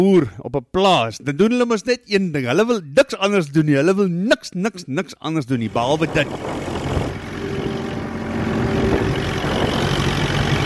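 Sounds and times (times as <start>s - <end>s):
speech: 0.0s - 6.8s
tractor engine running while ploughing wet ground on a farm: 5.6s - 10.6s.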